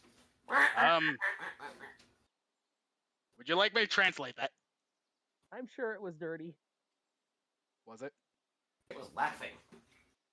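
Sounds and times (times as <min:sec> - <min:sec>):
speech: 0:00.5 - 0:01.4, 0:03.4 - 0:04.6, 0:05.5 - 0:06.6, 0:07.9 - 0:08.2, 0:09.0 - 0:09.8
duck quacking: 0:00.5 - 0:02.0.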